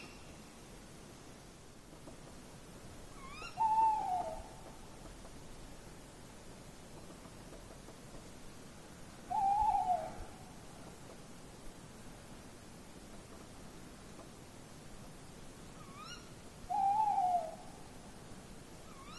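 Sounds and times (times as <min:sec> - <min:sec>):
constant hissy background: 0:00.0 - 0:19.1
Tawny owl hooting: 0:03.2 - 0:04.8, 0:09.3 - 0:10.6, 0:15.8 - 0:17.9, 0:18.9 - 0:19.1.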